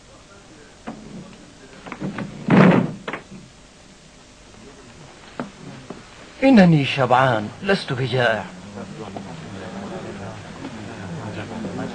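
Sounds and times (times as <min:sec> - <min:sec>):
house door shutting with a thud: 0:02.0 - 0:03.3
speech: 0:06.4 - 0:08.6.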